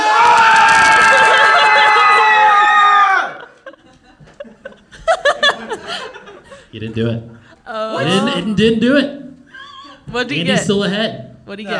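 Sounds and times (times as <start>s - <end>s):
audience cheering and yelling for a team: 0.0s - 3.6s
laughter: 1.1s - 6.7s
speech: 6.9s - 7.4s, 8.0s - 9.2s, 10.1s - 11.7s.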